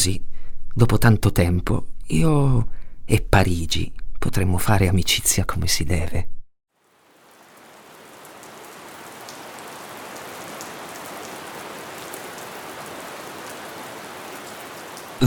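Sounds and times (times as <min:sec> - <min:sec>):
speech: 0:00.0 - 0:06.4
heavy rain falling: 0:06.8 - 0:15.2.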